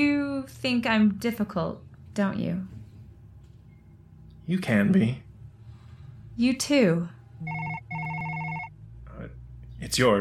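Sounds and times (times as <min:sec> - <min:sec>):
speech: 0:00.6 - 0:02.8, 0:04.5 - 0:05.2, 0:06.4 - 0:07.6, 0:09.8 - 0:10.1
telephone ringing: 0:07.4 - 0:08.7.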